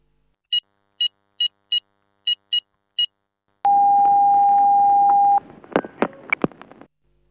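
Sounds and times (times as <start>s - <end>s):
touch-tone beeps dialing a telephone number in Moscow: 3.7s - 6.4s.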